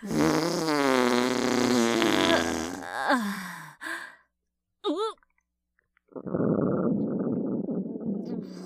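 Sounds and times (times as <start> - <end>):
fart: 0.0 - 2.9, 6.1 - 8.5.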